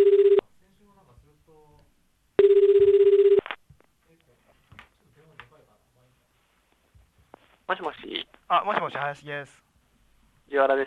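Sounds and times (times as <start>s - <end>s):
telephone ringback tone on an outgoing call: 0.0s - 0.4s, 2.4s - 3.4s
speech: 7.7s - 9.7s, 10.5s - 10.8s.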